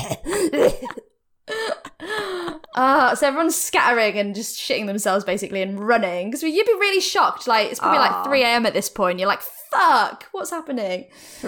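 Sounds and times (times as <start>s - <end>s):
person clearing throat: 0.0s - 1.0s
person coughing: 0.0s - 1.1s
speech: 0.5s - 1.1s, 2.8s - 11.4s.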